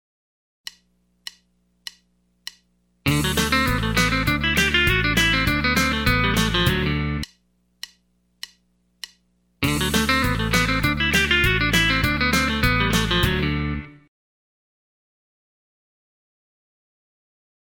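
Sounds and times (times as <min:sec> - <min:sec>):
country rock music: 0:03.1 - 0:07.3, 0:09.6 - 0:14.1.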